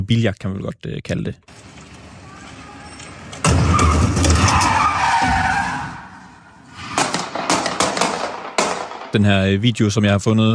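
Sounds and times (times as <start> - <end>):
speech: 0.0 - 1.8, 9.1 - 10.5
road noise: 1.4 - 9.2
car tires screeching in a fast spin: 1.5 - 8.6.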